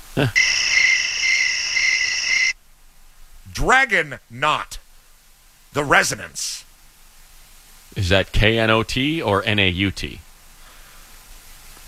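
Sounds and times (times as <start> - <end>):
chorus of crickets chirping: 0.0 - 2.6
speech: 0.2 - 0.5, 3.6 - 4.8, 5.8 - 6.7, 7.9 - 10.2.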